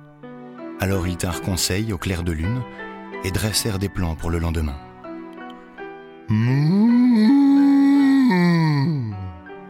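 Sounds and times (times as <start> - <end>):
speech: 0.8 - 4.9, 6.3 - 7.4
person imitating a cow mooing: 6.3 - 9.3.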